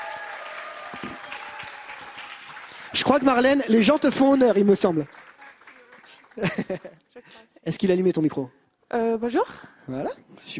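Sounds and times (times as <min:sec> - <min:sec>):
crowd applauding: 0:00.0 - 0:07.2
speech: 0:02.9 - 0:05.2, 0:06.4 - 0:10.5
laughter: 0:06.3 - 0:07.3.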